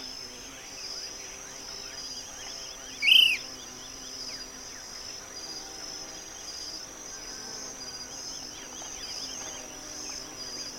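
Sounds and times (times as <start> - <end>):
high insect drone: 0.0 - 10.7
short-crested flycatcher whistled call: 3.0 - 3.4.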